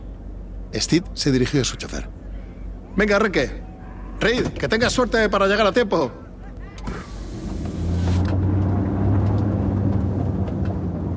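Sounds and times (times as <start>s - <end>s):
speech: 0.7s - 2.2s, 3.0s - 3.6s, 4.2s - 6.2s
car engine rumbling as the car pulls off and drives away: 6.9s - 11.1s.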